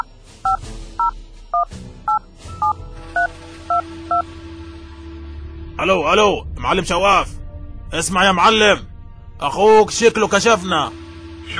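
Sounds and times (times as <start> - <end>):
touch-tone telephone keypad beeps dialing a number: 0.0 - 3.3
speech: 5.8 - 11.5.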